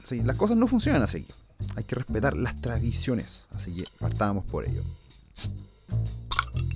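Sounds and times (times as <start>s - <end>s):
speech: 0.1s - 6.2s
beer bottle being opened: 3.8s - 4.0s, 6.3s - 6.7s.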